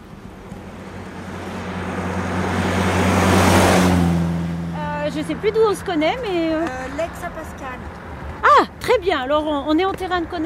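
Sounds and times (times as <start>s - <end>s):
car engine hum in a parking lot: 0.0s - 9.6s
car moving past in a parking lot: 0.1s - 8.4s
speech: 5.2s - 7.9s, 8.9s - 10.4s.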